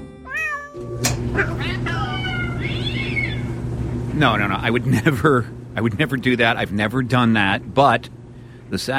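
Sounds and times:
steady low mechanical hum: 0.0s - 8.9s
several cats meowing and yowling: 0.2s - 1.2s, 1.9s - 3.6s
speech: 1.0s - 2.1s, 4.2s - 8.9s.

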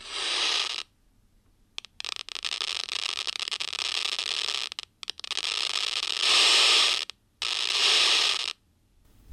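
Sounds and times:
crackling static bursts from neuron culture seizure activity through a loudspeaker: 0.0s - 0.9s, 1.8s - 8.6s
scattered pops: 1.8s - 8.6s.

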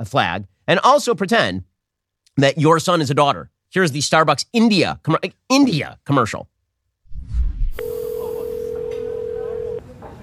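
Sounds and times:
speech: 0.0s - 1.7s, 2.4s - 6.5s
electronic phone ringing tone: 7.8s - 9.8s.

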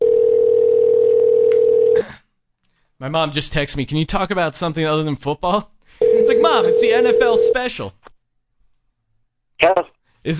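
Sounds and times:
telephone dial tone while dialing a call: 0.0s - 2.0s, 6.0s - 7.5s
speech: 3.0s - 8.0s, 9.6s - 10.3s.

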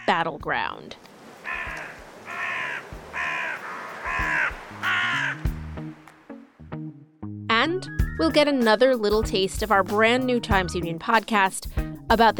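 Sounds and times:
birds calling: 0.0s - 6.1s
speech: 0.2s - 1.1s, 7.8s - 12.3s
traffic-like rumble: 0.9s - 6.2s
scattered sharp sounds: 1.0s - 5.4s
crows cawing harshly: 1.1s - 5.6s.

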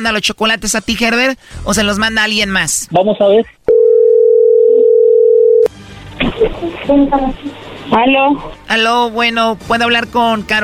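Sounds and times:
speech: 0.0s - 3.6s, 6.9s - 10.6s
telephone line ringing while placing a call: 3.7s - 5.7s.

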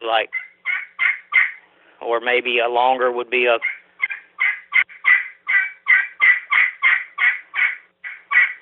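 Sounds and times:
speech: 0.1s - 0.5s, 2.1s - 3.8s
turkey yelps on a hand-held turkey game call: 0.3s - 1.6s, 3.6s - 8.6s.

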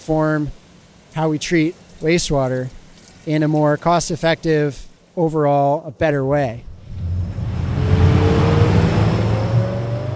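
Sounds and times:
speech: 0.0s - 0.6s, 1.2s - 6.7s
broad rushing noise: 6.7s - 10.1s
small motorboat engine droning speeding along a river: 6.7s - 10.1s.

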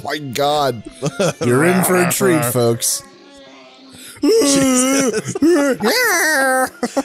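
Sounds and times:
speech: 0.0s - 3.2s, 4.2s - 7.0s
laughter: 0.9s - 2.8s, 4.2s - 7.0s
Wookiee creature growling, howling and barking in a movie: 1.4s - 2.6s.

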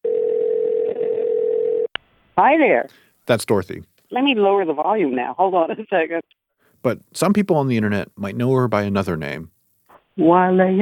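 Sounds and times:
steady telephone dial tone: 0.0s - 1.9s
speech: 2.4s - 9.6s, 10.2s - 10.8s.

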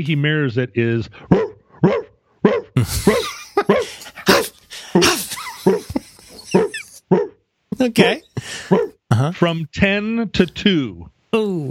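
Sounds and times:
speech: 0.0s - 2.0s, 2.8s - 3.3s, 7.9s - 8.8s, 9.4s - 11.6s
laughter: 2.8s - 7.1s, 8.1s - 9.5s
penned dog whimpering and yipping behind a fence: 5.7s - 7.3s.

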